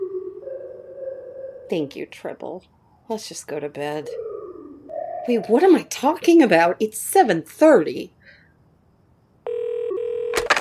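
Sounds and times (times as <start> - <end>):
speech: 1.7 - 4.3, 5.2 - 8.2
telephone tone: 9.4 - 10.5.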